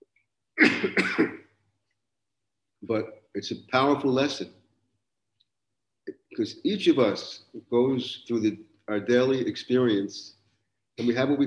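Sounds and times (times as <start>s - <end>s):
raspy throaty cough: 0.6s - 1.4s
speech: 2.9s - 4.6s, 6.4s - 10.4s, 11.0s - 11.4s.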